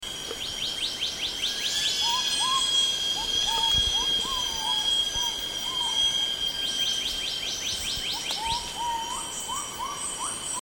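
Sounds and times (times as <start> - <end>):
Black-naped Monarch calling at Pinang Jatus, Gunung Lumut: 0.3 - 10.6.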